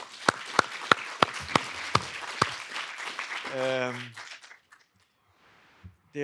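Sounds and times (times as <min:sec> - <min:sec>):
applause from a small audience: 0:00.0 - 0:04.9
speech: 0:03.5 - 0:04.2.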